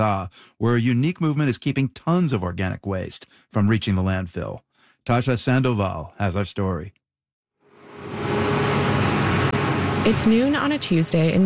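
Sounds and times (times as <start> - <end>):
speech: 0.0 - 7.0, 10.0 - 11.4
garbage truck engine rumbling coming down a hill: 7.8 - 11.4.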